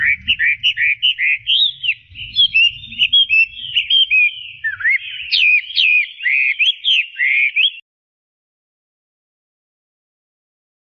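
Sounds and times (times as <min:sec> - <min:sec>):
Chinese hwamei singing a short whistled phrase: 0:00.0 - 0:07.8.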